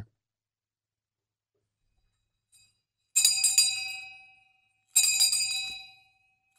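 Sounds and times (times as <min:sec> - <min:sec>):
shame bell handbell clanging: 0:03.2 - 0:04.4, 0:05.0 - 0:06.0.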